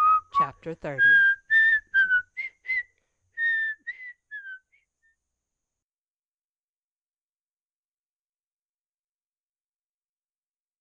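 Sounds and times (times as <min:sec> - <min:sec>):
person whistling a tune: 0:00.0 - 0:05.2
speech: 0:00.4 - 0:01.3.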